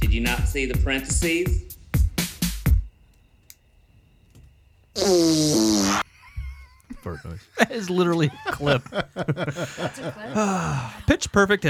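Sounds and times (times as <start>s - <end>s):
speech: 0.2s - 1.7s, 5.0s - 5.7s, 7.0s - 11.6s
buzzy fart noise with wobbling falling pitch: 5.0s - 6.7s
laughter: 6.0s - 11.6s.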